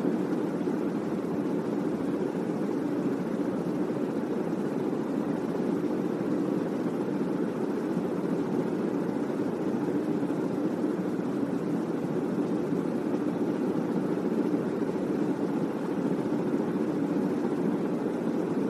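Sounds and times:
ceiling fan turning at low speed with whoosh of moving air: 0.0s - 18.6s.

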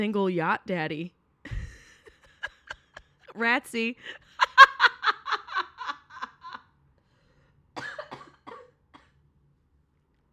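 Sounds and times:
speech: 0.0s - 1.2s, 3.4s - 4.2s
laughter: 4.2s - 6.6s
person coughing: 7.8s - 9.2s.

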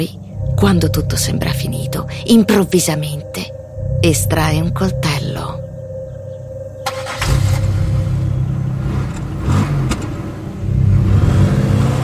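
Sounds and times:
speech: 0.0s - 5.5s
car engine rumble: 0.0s - 12.0s
cars passing on a busy road: 7.3s - 12.0s.

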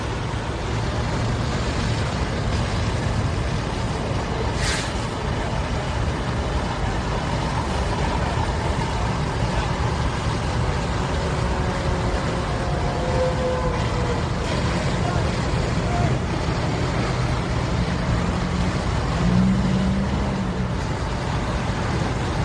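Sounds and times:
broadband outdoor noise: 0.0s - 22.4s
fire ladder truck heavy engine rumbling: 0.0s - 22.4s
brief sharp hiss: 4.5s - 5.2s.

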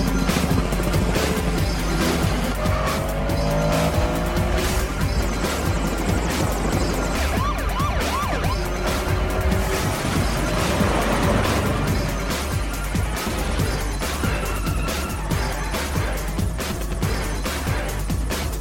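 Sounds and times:
police helicopter droning overhead: 0.0s - 16.2s
tires squealing and skidding: 0.0s - 17.7s
car engines roaring at speed in a police chase through Miami streets: 0.0s - 18.6s
police siren wailing: 2.4s - 13.4s, 14.0s - 16.0s.

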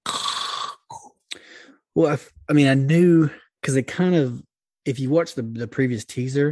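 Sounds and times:
person imitating heavy raspy mask breathing: 0.0s - 1.9s
speech: 2.0s - 6.5s.

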